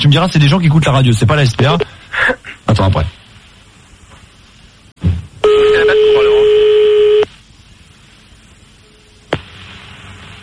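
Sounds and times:
speech: 0.0 - 2.0, 2.8 - 3.2
fax machine tone on a phone line: 5.4 - 7.3.

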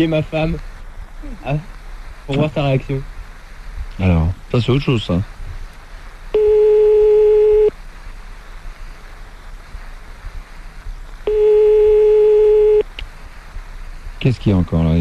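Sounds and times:
speech: 0.0 - 3.1, 4.0 - 5.4, 14.2 - 14.9
faint low hum: 0.0 - 14.9
long steady telephone calling tones while dialing someone: 6.4 - 7.7, 11.3 - 12.9.

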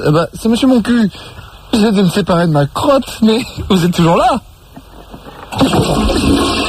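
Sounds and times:
speech: 0.0 - 4.5
toilet flushing: 5.4 - 6.6.

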